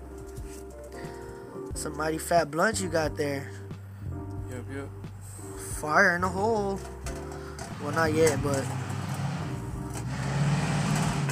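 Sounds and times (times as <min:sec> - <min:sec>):
speech: 0:01.8 - 0:03.6, 0:04.7 - 0:05.0, 0:05.8 - 0:07.0, 0:07.8 - 0:08.8
heavy vehicle engine rumbling as it rolls past: 0:06.9 - 0:11.3.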